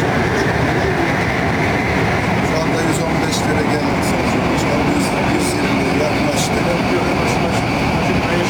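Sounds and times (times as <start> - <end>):
metro train moving fast on the Halkalı–Kayaşehir line in Istanbul: 0.0 - 8.4.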